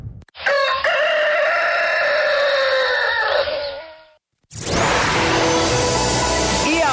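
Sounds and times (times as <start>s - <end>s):
rooster crowing: 0.4s - 4.2s
dense burst of noisy sound: 4.6s - 6.9s.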